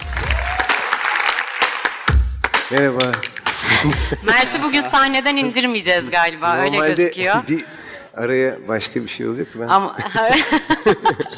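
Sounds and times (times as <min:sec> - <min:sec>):
audience applause welcoming guests onto the stage: 0:00.0 - 0:03.9
speech: 0:02.7 - 0:11.3
laughter: 0:03.6 - 0:04.8, 0:09.8 - 0:11.3.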